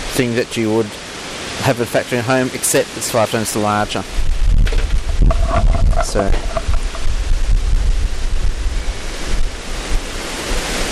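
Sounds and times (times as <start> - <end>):
speech: 0.2 - 6.7
strong cold wind outdoors buffeting the microphone: 3.8 - 10.8.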